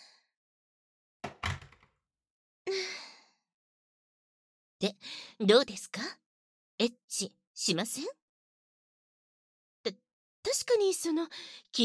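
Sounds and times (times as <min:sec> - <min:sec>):
door swinging shut with double thud and latch: 0:01.2 - 0:01.9
speech: 0:04.8 - 0:06.2, 0:06.8 - 0:08.2, 0:09.8 - 0:11.8.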